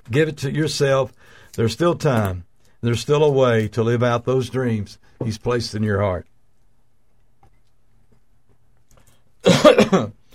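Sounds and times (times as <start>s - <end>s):
speech: 0.1s - 6.3s, 9.4s - 10.2s
rough throat clearing: 9.4s - 10.2s
person coughing: 9.4s - 10.3s.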